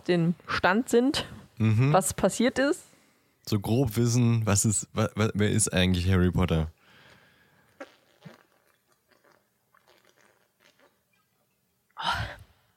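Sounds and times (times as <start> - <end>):
speech: 0.0 - 6.8
person sipping and swallowing a beverage: 7.6 - 12.4.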